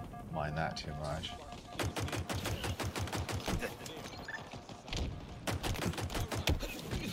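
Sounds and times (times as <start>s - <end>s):
speech: 0.4s - 2.5s, 3.6s - 4.0s
pistol gunfire in a first-person shooter video game: 1.7s - 4.0s, 5.2s - 7.1s.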